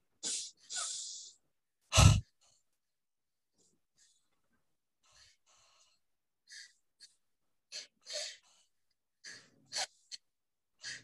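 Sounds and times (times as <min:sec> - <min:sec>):
deep abdominal breathing exercise in and out: 0:00.2 - 0:02.6, 0:05.0 - 0:10.2, 0:10.8 - 0:11.0.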